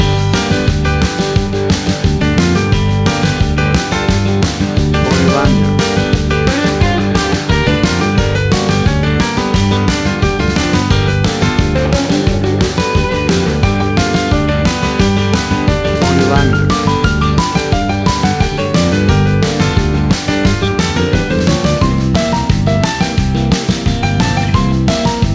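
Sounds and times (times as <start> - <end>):
country shuffle rodeo music from a jukebox: 0.0 - 25.3.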